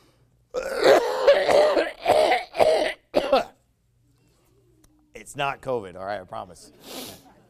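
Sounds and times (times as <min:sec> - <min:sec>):
person hacking coughs: 0:00.6 - 0:03.6
throat clearing: 0:00.6 - 0:03.6
speech: 0:05.3 - 0:07.0.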